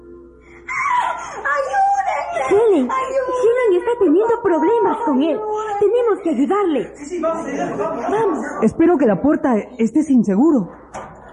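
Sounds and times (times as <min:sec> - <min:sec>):
woman screaming in a room: 0:00.7 - 0:06.2
laughter: 0:00.7 - 0:08.7
speech: 0:02.5 - 0:10.8.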